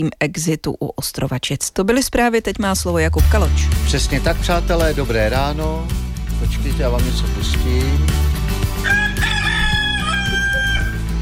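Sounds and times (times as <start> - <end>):
speech: 0.0 - 9.0
rooster crowing: 8.8 - 11.2.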